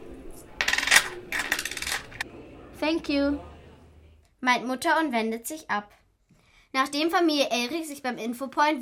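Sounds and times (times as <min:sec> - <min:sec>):
coins handed over as payment for a newspaper at a kiosk: 0:00.6 - 0:02.2
speech: 0:02.8 - 0:03.5, 0:04.4 - 0:06.0, 0:06.7 - 0:08.8.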